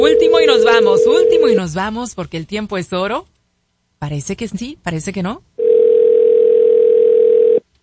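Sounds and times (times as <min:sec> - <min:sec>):
telephone line tone on an unanswered call: 0:00.0 - 0:01.6, 0:05.6 - 0:07.6
speech: 0:01.6 - 0:03.4, 0:04.0 - 0:05.6.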